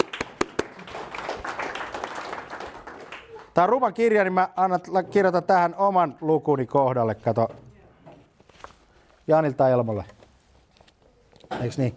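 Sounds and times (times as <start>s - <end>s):
audience applause: 0.0s - 3.6s
speech: 3.6s - 7.6s, 9.3s - 10.2s, 11.5s - 11.9s.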